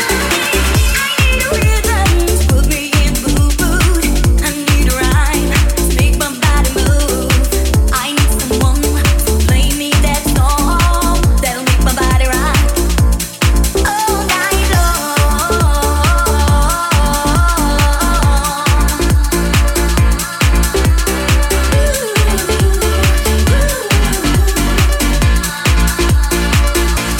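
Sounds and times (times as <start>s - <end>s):
house music with thumping kick drum and synth chords: 0.0s - 27.1s.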